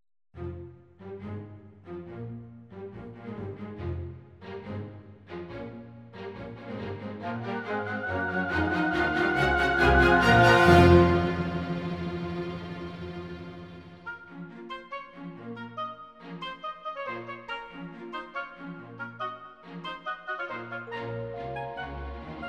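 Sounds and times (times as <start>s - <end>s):
oboe section: 7.2s - 15.0s, 15.6s - 22.4s.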